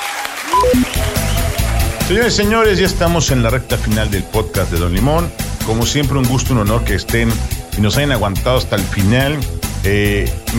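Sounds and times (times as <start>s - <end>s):
applause and cheering: 0.0s - 2.7s
speech: 2.1s - 10.5s.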